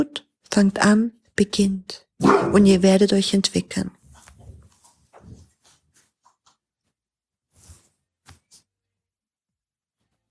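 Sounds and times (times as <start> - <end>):
speech: 0.0 - 4.0
dog barking: 2.2 - 2.8.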